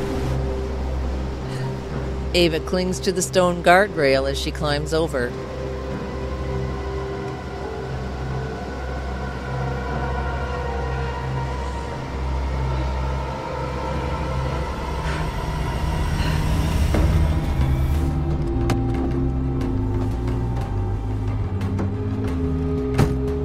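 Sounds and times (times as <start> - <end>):
water rushing over a waterfall: 0.0 - 18.0
heavy truck engine rumbling and idling: 0.0 - 23.4
low droning hum: 0.0 - 23.4
speech: 2.3 - 5.6.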